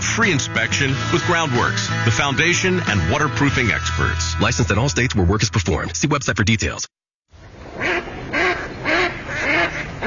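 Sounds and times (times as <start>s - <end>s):
speech: 0.2s - 7.0s
ducks quacking: 7.8s - 10.0s.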